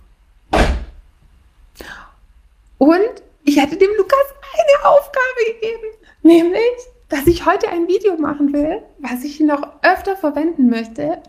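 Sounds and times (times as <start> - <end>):
door shutting with a solid low thud: 0.5 - 1.0
speech: 2.8 - 11.2.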